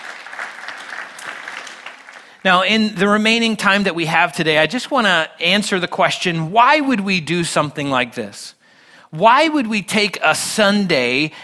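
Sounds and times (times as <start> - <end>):
congregation applauding: 0.0 - 2.7
speech: 2.4 - 11.4.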